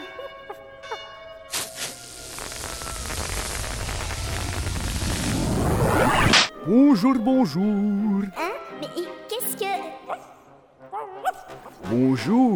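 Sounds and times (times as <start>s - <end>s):
church bells ringing: 0.0s - 1.6s
dense wash of broadband rushing noise: 1.6s - 6.5s
speech: 6.7s - 9.1s, 11.9s - 12.5s.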